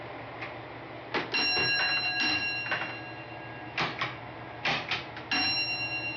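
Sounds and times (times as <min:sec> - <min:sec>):
railway block signalling bell struck as a confirmation signal: 0:01.3 - 0:03.8, 0:05.3 - 0:06.1.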